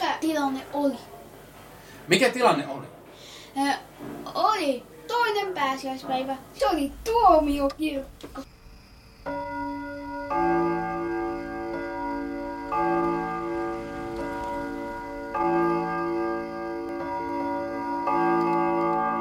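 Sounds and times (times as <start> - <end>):
speech: 0.4 - 1.2, 2.1 - 3.0, 3.6 - 8.5, 9.2 - 9.5
clock striking four o'clock at night: 9.3 - 19.1.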